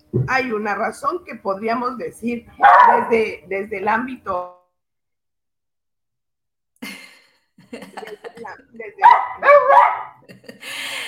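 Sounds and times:
speech: 0:00.1 - 0:04.6
dog barking in loud bursts: 0:02.6 - 0:03.2, 0:09.0 - 0:10.2
laughter: 0:06.8 - 0:09.0, 0:10.2 - 0:11.0.

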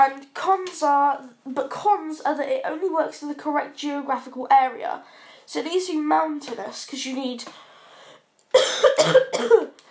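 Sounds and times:
speech: 0:00.0 - 0:07.7, 0:08.5 - 0:09.8
person coughing: 0:08.5 - 0:09.8.

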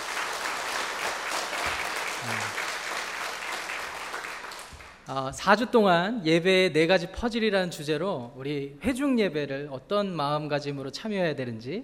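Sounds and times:
audience applauding: 0:00.0 - 0:05.1
speech: 0:05.1 - 0:11.8.

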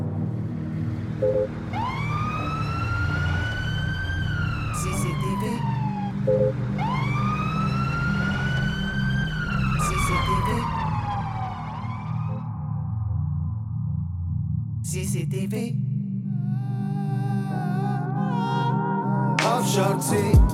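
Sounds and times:
emergency vehicle siren wailing: 0:00.0 - 0:13.0
steady low rumbling background: 0:00.0 - 0:18.6
speech: 0:01.2 - 0:02.0, 0:15.0 - 0:15.9, 0:19.8 - 0:20.5.

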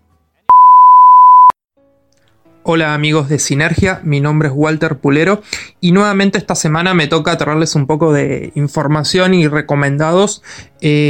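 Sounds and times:
answering machine electronic beep: 0:00.5 - 0:01.5
speech: 0:02.7 - 0:11.0.

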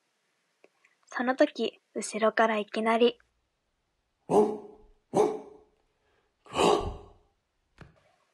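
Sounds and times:
speech: 0:01.2 - 0:03.2, 0:04.3 - 0:04.6
human voice imitating loud gruff dog barks: 0:04.3 - 0:05.6, 0:06.5 - 0:07.2.

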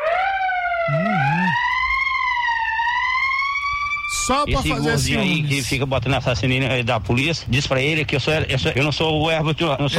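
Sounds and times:
siren wailing: 0:00.0 - 0:05.5
low warbling tone: 0:00.7 - 0:01.8
speech: 0:04.3 - 0:09.9.

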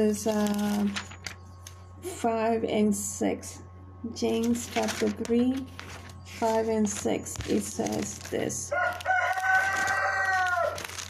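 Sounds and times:
speech: 0:00.0 - 0:01.1, 0:02.0 - 0:09.1
low steady hum: 0:00.0 - 0:11.0
rooster crowing: 0:08.7 - 0:11.0.

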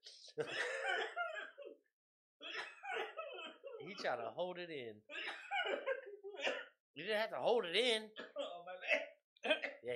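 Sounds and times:
speech: 0:00.4 - 0:00.7, 0:04.0 - 0:05.2, 0:07.0 - 0:08.9
person harsh raspy coughing: 0:00.4 - 0:01.8, 0:02.4 - 0:04.1, 0:05.1 - 0:06.8, 0:08.2 - 0:09.8.

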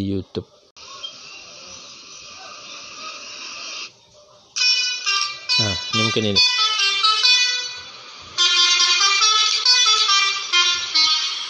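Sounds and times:
speech: 0:00.0 - 0:00.6, 0:05.6 - 0:06.8
loud musical vehicle horn playing a tune: 0:04.6 - 0:11.4.

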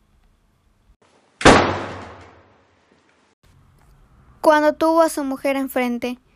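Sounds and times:
door slamming shut: 0:01.4 - 0:02.4
speech: 0:04.4 - 0:06.2.

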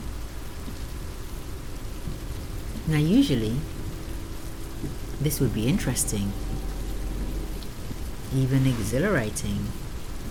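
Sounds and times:
steady rain falling: 0:00.0 - 0:10.3
speech: 0:02.9 - 0:03.8, 0:05.2 - 0:06.5, 0:08.3 - 0:09.8.

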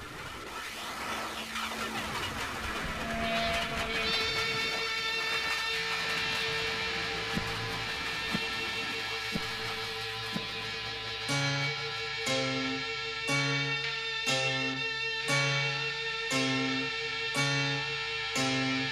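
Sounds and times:
train sound run through a swirling phaser effect: 0:00.2 - 0:18.9
sustained tones: 0:01.6 - 0:18.9
rhythmic punchy beats: 0:04.0 - 0:18.9.

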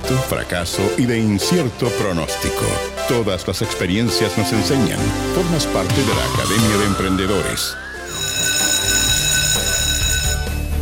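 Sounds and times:
speech: 0:00.1 - 0:07.8
school bell ringing with metallic clang: 0:07.9 - 0:10.7.

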